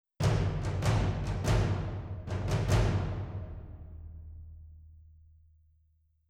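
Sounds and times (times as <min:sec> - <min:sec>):
surdo drums: 0:00.2 - 0:03.9.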